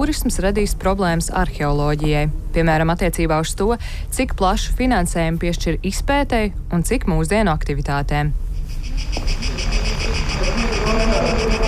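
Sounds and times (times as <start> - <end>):
speech: 0.0 - 9.4
low rumble: 0.0 - 11.6
megaphone emitting grasshopper-like pulsing chirp: 9.0 - 11.6.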